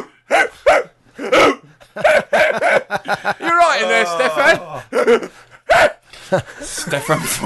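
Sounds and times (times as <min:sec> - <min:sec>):
person imitating a dog barking: 0:00.0 - 0:02.9, 0:03.6 - 0:05.1, 0:05.7 - 0:06.0
laughter: 0:01.7 - 0:05.6, 0:06.2 - 0:07.4
speech: 0:07.0 - 0:07.4.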